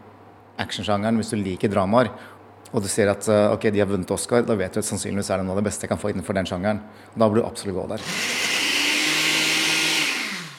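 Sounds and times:
speech: 0.6 - 8.4
blender blending mango and ginger at high speed: 8.0 - 10.5.

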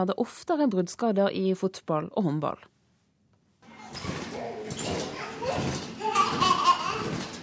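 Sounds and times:
speech: 0.0 - 2.7
children laughing in an indoor play area: 5.0 - 7.4.

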